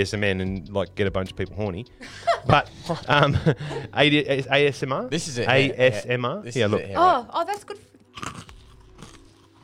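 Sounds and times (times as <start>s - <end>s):
speech: 0.0s - 7.9s
laughter: 2.0s - 4.2s
biting into brittle honeycomb crunch candy: 8.0s - 9.6s
chewing honeycomb crunch candy: 8.0s - 9.6s.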